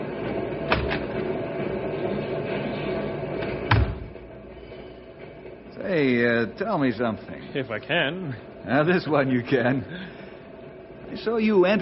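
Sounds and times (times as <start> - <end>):
machinery whirring: 0.0 - 11.8
door at a dynamite plant closing with a thud: 3.4 - 4.1
speech: 6.0 - 10.2, 11.1 - 11.8.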